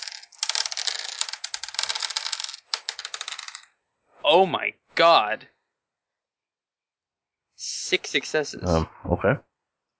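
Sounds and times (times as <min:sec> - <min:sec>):
ten dice rattling and clattering as they are rolled for a tabletop role-playing game: 0:00.0 - 0:03.7
speech: 0:04.3 - 0:05.6, 0:07.6 - 0:09.5.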